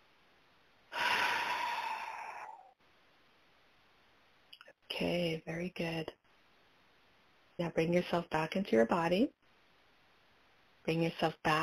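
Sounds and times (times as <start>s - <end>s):
loud breathy deep breath: 0.9s - 2.8s
speech: 5.0s - 6.2s, 7.6s - 9.4s, 10.8s - 11.6s.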